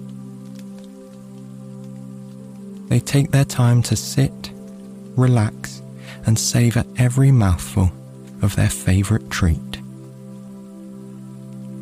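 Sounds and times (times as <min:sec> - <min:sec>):
rain pattering outside a bakery: 0:00.0 - 0:11.8
speech: 0:02.9 - 0:04.6, 0:05.2 - 0:09.7.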